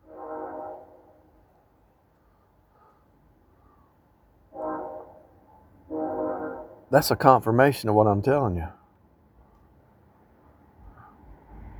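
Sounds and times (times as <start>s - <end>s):
train horn blasts: 0.0s - 1.4s, 4.5s - 6.9s
speech: 6.9s - 8.8s.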